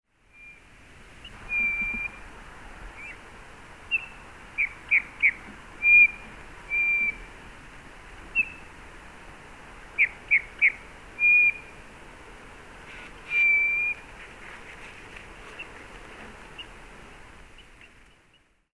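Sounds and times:
faint background hiss: 0.1 - 18.7
Eurasian bullfinch soft pure piping whistles: 0.3 - 0.6, 1.2 - 2.2, 3.0 - 3.2, 3.9 - 7.3, 8.3 - 8.6, 10.0 - 11.7, 12.9 - 14.0.

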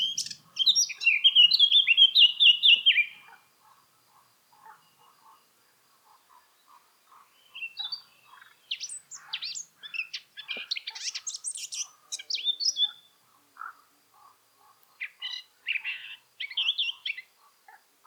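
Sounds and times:
Eurasian blackcap Sylvia atricapilla song with fluty whistles and twittering: 0.0 - 3.3, 7.3 - 13.1, 15.0 - 17.3.

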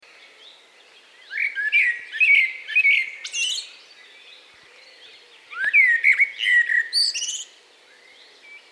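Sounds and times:
common blackbird Turdus merula singing whistled phrases with twittering flourishes: 1.2 - 4.2, 4.8 - 8.7.

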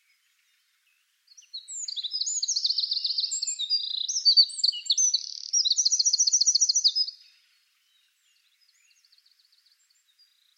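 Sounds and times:
Eurasian wren Troglodytes troglodytes singing: 1.3 - 7.4.

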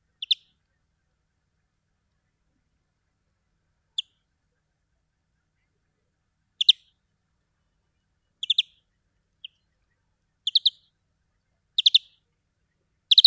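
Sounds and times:
European greenfinch Chloris chloris giving brief twittering chirps: 0.2 - 0.5, 6.6 - 6.9, 8.4 - 8.8, 10.4 - 10.9, 11.8 - 12.2, 13.1 - 13.2.

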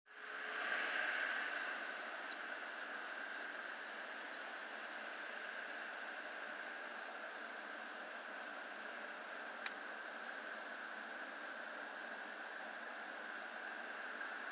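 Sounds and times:
steady background hiss: 0.2 - 14.4
European robin giving short sharp high ticks: 0.8 - 1.1, 2.0 - 2.6, 3.3 - 4.6, 6.7 - 7.2, 9.4 - 9.9, 12.5 - 13.2.

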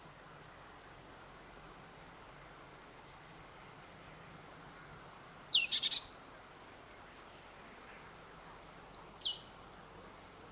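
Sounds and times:
Poecile palustris marsh tit calling: 4.6 - 6.1, 8.0 - 9.4.

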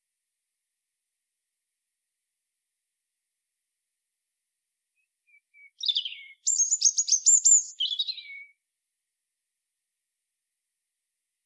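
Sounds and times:
European robin Erithacus rubecula singing: 5.3 - 8.6.

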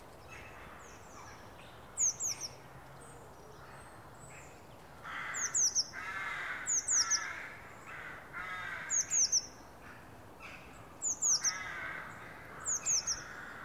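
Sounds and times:
diffuse background noise: 0.0 - 13.6
Eurasian blue tit Cyanistes caeruleus calling: 2.0 - 2.6, 5.1 - 9.6, 10.4 - 13.6.

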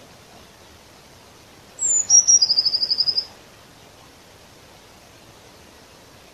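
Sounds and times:
quiet background hiss: 0.0 - 6.3
Eurasian blue tit Cyanistes caeruleus call: 1.8 - 3.3.

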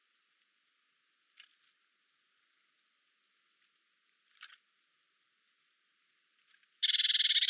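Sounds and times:
Eurasian blue tit Cyanistes caeruleus calling: 6.5 - 7.4.

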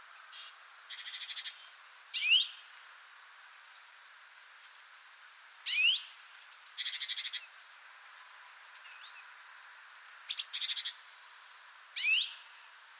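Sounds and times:
soft background hiss: 0.0 - 12.9
European greenfinch Chloris chloris rising sweeping calls: 0.1 - 7.7, 10.3 - 12.9.

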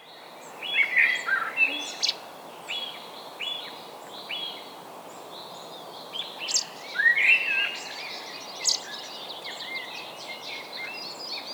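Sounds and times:
Eurasian blackbird Turdus merula song with warbled phrase and thin notes: 0.0 - 11.5.

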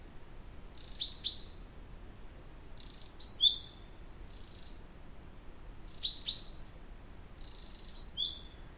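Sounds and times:
faint steady background hiss: 0.0 - 8.7
common chaffinch Fringilla coelebs calls: 0.8 - 4.8, 5.8 - 8.6.

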